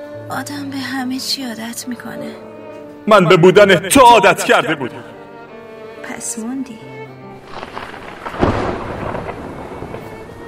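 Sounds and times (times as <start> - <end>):
speech: 0.3 - 2.5, 3.1 - 5.1, 6.2 - 7.0
steady hiss of downpour: 7.4 - 10.4
thunder rumbling during rainstorm: 7.4 - 10.4.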